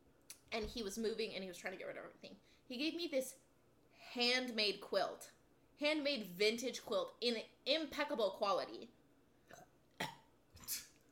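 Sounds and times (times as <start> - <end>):
speech: 0.6 - 9.6
short throaty burps: 9.5 - 10.8.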